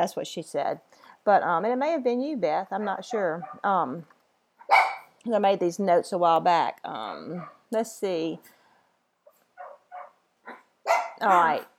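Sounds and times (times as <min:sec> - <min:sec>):
speech: 0:00.0 - 0:04.1, 0:04.7 - 0:08.6, 0:11.2 - 0:11.7
dog barking: 0:02.8 - 0:03.7, 0:04.6 - 0:05.2, 0:07.4 - 0:07.6, 0:09.6 - 0:11.7.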